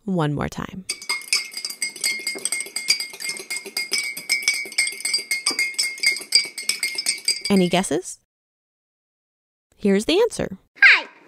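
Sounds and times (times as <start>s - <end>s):
speech: 0.1s - 1.1s, 7.5s - 8.2s, 9.8s - 10.6s
lemonade being served into a glass with clinks and glassy rattles: 0.9s - 8.0s.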